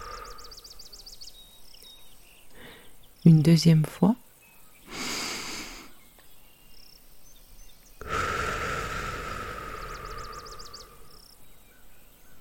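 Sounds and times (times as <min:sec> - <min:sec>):
meditation breathing in through the nose: 0:00.0 - 0:00.9, 0:04.9 - 0:06.0, 0:08.0 - 0:11.4
meditation breathing out through the mouth: 0:00.0 - 0:01.0, 0:04.9 - 0:06.0, 0:08.0 - 0:11.5
speech: 0:03.2 - 0:04.2.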